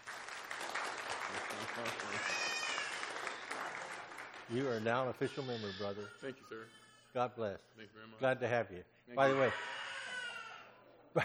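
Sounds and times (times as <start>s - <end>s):
church audience clapping in applause: 0.0s - 5.2s
scattered voices and cheers: 0.6s - 4.7s
speech: 1.6s - 2.5s, 4.5s - 9.8s.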